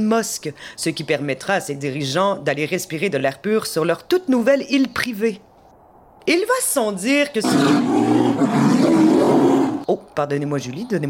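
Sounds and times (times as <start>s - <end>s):
speech: 0.0s - 5.5s, 6.3s - 9.2s, 9.9s - 11.0s
polar bear roaring in Antarctica: 7.4s - 9.8s.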